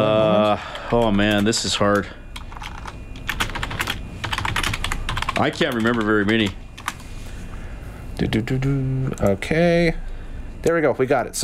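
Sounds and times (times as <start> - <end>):
typing on a computer keyboard: 0.4 - 7.0
speech: 0.6 - 2.2, 5.4 - 6.6, 8.2 - 11.4.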